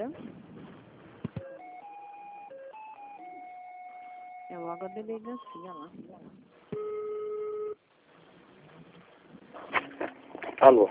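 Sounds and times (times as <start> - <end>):
speech: 0.0 - 0.4, 4.7 - 6.7, 10.6 - 10.9
telephone tone as a call is transferred to an extension: 1.4 - 6.0, 6.7 - 7.8.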